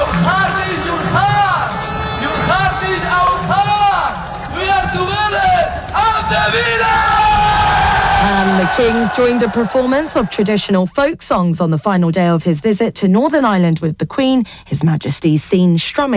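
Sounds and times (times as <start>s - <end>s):
crowd of thousands of football fans cheering outdoors at an open-top bus parade: 0.0s - 10.6s
speech: 8.6s - 16.1s.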